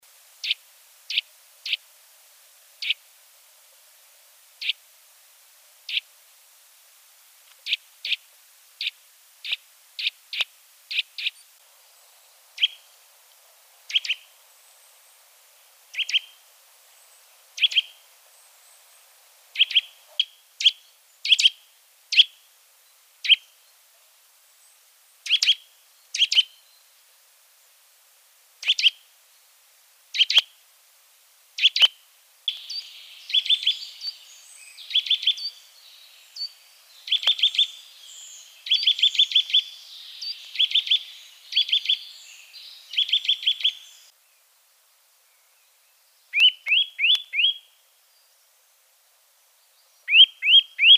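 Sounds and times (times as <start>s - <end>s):
Eurasian nuthatch calling: 0.4s - 1.8s, 2.8s - 3.0s, 4.6s - 4.8s, 8.8s - 11.5s, 12.6s - 12.9s, 13.9s - 15.0s, 15.9s - 16.5s, 17.1s - 18.9s, 19.5s - 22.5s, 23.2s - 23.6s, 25.2s - 26.7s, 28.6s - 29.0s, 30.1s - 30.5s, 31.6s - 44.1s, 46.3s - 47.7s, 50.0s - 50.9s.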